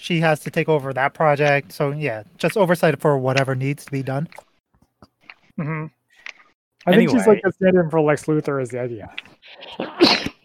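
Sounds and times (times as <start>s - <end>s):
speech: 0.0s - 4.5s, 5.6s - 6.0s, 6.8s - 10.4s
person sneezing: 9.5s - 10.4s.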